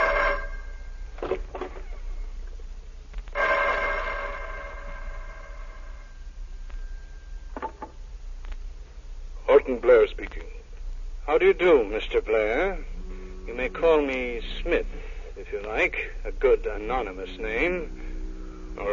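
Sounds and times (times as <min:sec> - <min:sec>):
telephone bell ringing: 0:00.0 - 0:00.8, 0:03.4 - 0:05.3
speech: 0:09.7 - 0:10.6, 0:11.3 - 0:12.9, 0:13.5 - 0:18.0, 0:18.8 - 0:18.9.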